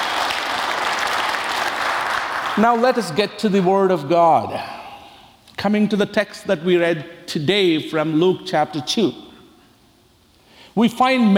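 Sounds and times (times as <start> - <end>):
crowd applauding: 0.0 - 3.2
speech: 2.6 - 4.8, 5.6 - 9.2, 10.8 - 11.3.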